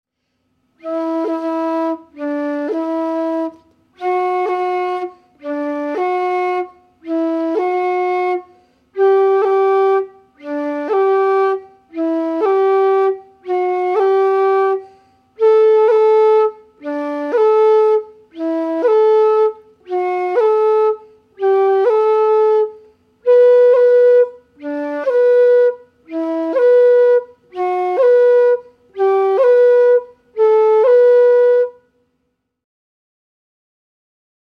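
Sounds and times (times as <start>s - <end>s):
cut ornament on an Irish flute: 0.8s - 32.1s.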